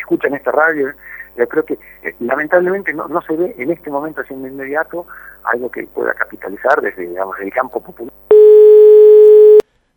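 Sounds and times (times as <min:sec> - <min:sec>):
speech: 0:00.1 - 0:08.3
telephone busy tone after a failed phone call: 0:08.3 - 0:09.6.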